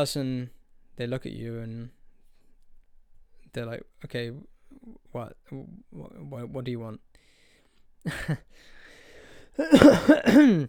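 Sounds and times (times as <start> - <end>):
speech: 0.0 - 2.0, 3.5 - 7.2, 8.0 - 8.8, 9.6 - 10.6
harsh throaty coughing and throat clearing: 9.6 - 10.6.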